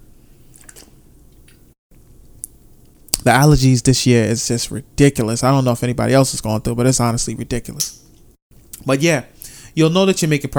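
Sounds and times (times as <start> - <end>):
person sipping and swallowing water: 0.4 - 1.7
speech: 3.2 - 8.0, 8.8 - 10.5.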